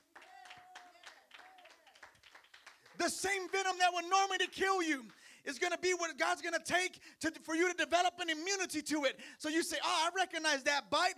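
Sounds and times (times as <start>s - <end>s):
crowd applauding: 0.0s - 5.3s
speech: 3.0s - 11.1s.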